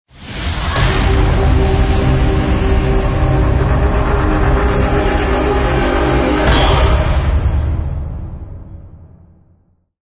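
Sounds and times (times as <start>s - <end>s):
cinematic logo impact: 0.3s - 9.7s
choir singing: 1.0s - 7.6s.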